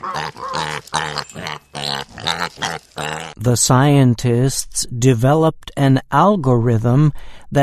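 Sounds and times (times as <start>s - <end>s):
pig grunting and oinking: 0.0s - 3.4s
speech: 0.0s - 7.6s.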